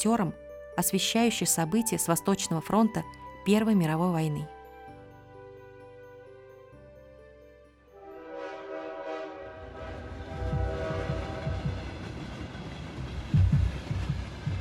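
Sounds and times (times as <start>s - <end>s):
speech: 0.0s - 4.6s
train horn: 8.0s - 12.2s
heavy train rumbling along rails with wheels clattering over track joints: 9.4s - 14.5s.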